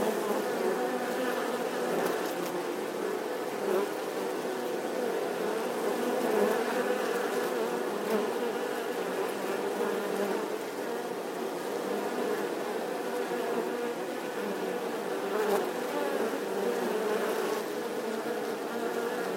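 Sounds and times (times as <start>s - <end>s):
honey bee swarm buzzing outside the hive: 0.0s - 19.3s.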